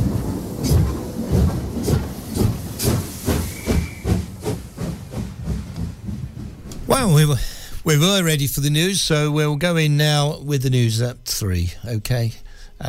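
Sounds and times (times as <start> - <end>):
steam train pulling away with hissing steam chuffs: 0.0 - 9.3
brief high whistle-like tone: 3.3 - 4.4
speech: 7.0 - 12.8.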